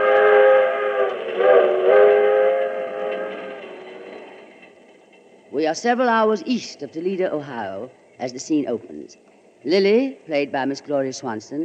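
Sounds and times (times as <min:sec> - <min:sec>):
sustained chord-like train whistle tones: 0:00.0 - 0:04.3
passenger train rumbling along the rails: 0:00.0 - 0:11.6
speech: 0:05.6 - 0:11.6.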